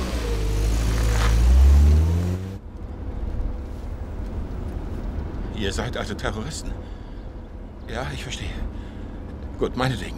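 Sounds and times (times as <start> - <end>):
car accelerating: 0.0 - 2.6
speech: 5.6 - 7.0, 7.9 - 8.9, 9.6 - 10.1.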